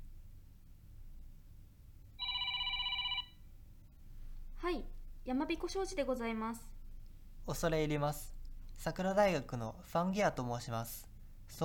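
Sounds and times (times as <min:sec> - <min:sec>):
telephone ringing on outgoing call: 0:02.2 - 0:03.4
speech: 0:04.6 - 0:06.8, 0:07.4 - 0:11.6.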